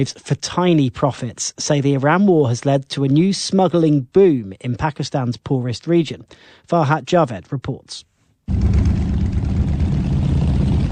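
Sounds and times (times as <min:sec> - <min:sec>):
speech: 0:00.0 - 0:08.8
thousands of motorbike engines idling and revving on Pakistan's border with Iran: 0:08.5 - 0:10.8.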